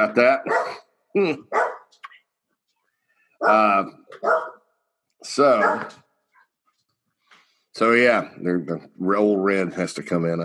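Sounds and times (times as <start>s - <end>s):
speech: 0.0s - 1.6s, 3.4s - 4.5s, 5.2s - 6.0s, 7.8s - 10.4s
pet dog barking: 0.4s - 0.8s, 1.5s - 1.9s, 3.4s - 4.6s, 5.4s - 6.0s.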